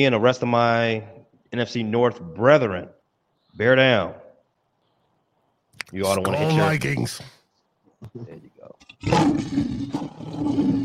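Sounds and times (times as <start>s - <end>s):
speech: 0.0s - 3.0s, 3.6s - 4.2s, 5.9s - 7.4s, 8.0s - 10.8s
lion roaring: 8.8s - 10.8s.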